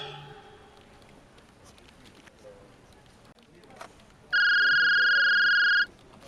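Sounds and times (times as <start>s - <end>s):
telephone ringing with electronic trill: 4.4s - 5.9s.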